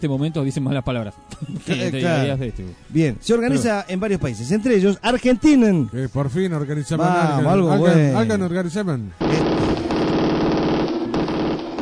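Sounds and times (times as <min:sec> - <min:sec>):
speech: 0:00.0 - 0:09.8
gunfire sound effect as celebratory shooting: 0:09.2 - 0:11.7.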